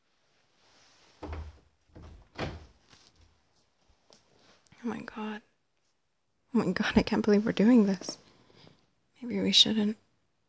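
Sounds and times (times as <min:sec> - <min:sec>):
door thudding shut: 0:01.2 - 0:02.8
speech: 0:04.8 - 0:05.5, 0:06.5 - 0:08.2, 0:09.2 - 0:10.0.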